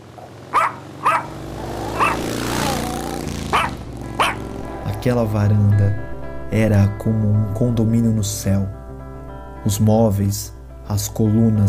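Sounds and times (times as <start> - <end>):
small Pomeranian dog yapping on a balcony: 0.2 - 4.4
speech: 5.0 - 8.8, 9.6 - 11.6.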